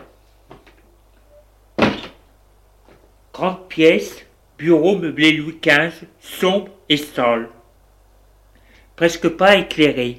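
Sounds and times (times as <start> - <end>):
door banging open with a brief rattle: 1.8 - 2.2
speech: 3.4 - 7.6, 9.0 - 10.1.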